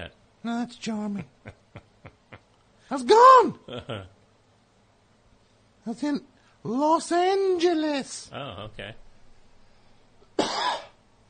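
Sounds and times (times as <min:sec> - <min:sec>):
speech: 0:00.4 - 0:01.6, 0:02.9 - 0:04.2, 0:05.8 - 0:09.0
person coughing: 0:10.4 - 0:11.0.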